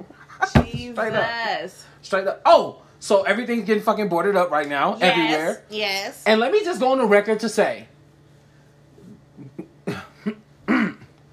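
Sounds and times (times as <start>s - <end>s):
speech: 0.7s - 7.9s
man clearing his throat: 9.1s - 11.1s.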